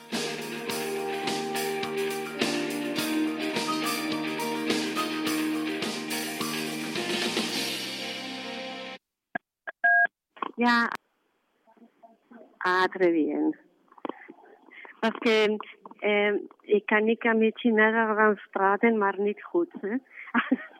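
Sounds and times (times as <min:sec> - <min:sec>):
busy rhythmic music: 0:00.0 - 0:09.0
speech: 0:10.6 - 0:11.0, 0:12.7 - 0:13.6, 0:15.0 - 0:20.7.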